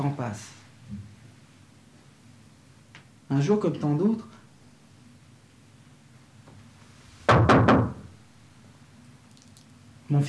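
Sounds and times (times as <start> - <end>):
speech: 0.0 - 1.0, 3.3 - 4.4
firm knocking on a wooden door: 7.3 - 8.1.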